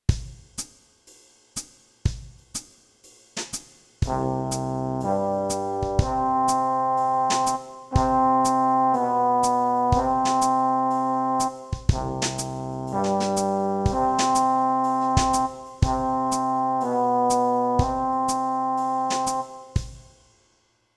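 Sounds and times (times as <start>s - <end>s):
brass notes in E flat: 4.0s - 20.2s.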